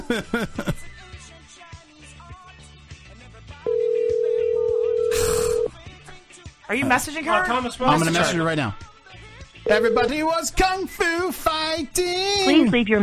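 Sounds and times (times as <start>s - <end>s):
laughter: 0.0s - 1.0s
speech: 0.1s - 0.8s, 6.7s - 8.8s, 9.7s - 13.0s
outgoing phone call ringback tone: 3.7s - 5.8s, 9.7s - 10.2s.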